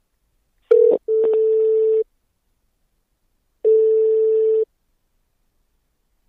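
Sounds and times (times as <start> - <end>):
telephone ringback tone while call connects: 0.7 - 2.0, 3.7 - 4.7.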